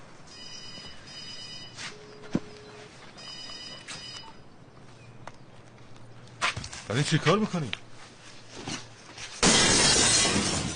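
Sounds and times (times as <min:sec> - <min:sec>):
speech: 0:06.9 - 0:07.8
window glass shattering: 0:09.4 - 0:10.7.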